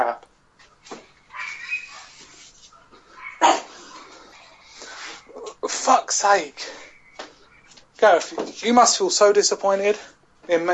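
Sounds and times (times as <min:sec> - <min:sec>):
dog barking: 0:01.3 - 0:02.2, 0:03.1 - 0:04.3
dog whimpering and whining: 0:01.3 - 0:02.2
speech: 0:05.8 - 0:06.8, 0:08.0 - 0:10.7.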